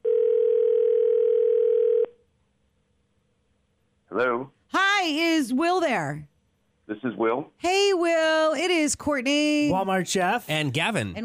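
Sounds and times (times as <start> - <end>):
telephone ringback tone on an outgoing call: 0.0 - 2.1
speech: 4.3 - 6.3, 6.9 - 11.2.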